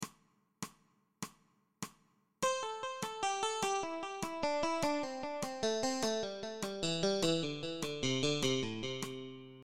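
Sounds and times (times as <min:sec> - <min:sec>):
descending eighth-note triplet hammer-ons in a blues pentatonic exercise: 0:02.4 - 0:09.6.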